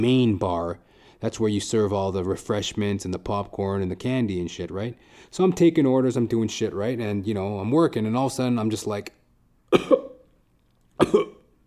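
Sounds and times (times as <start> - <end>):
speech: 0.0 - 10.0
worker at a concession stand coughing: 9.7 - 10.3, 11.0 - 11.6.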